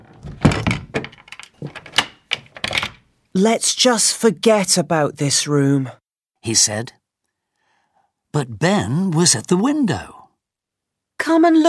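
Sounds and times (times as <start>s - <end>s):
key turning in a door lock: 0.0s - 3.1s
speech: 3.4s - 7.0s, 8.4s - 10.2s, 11.2s - 11.6s.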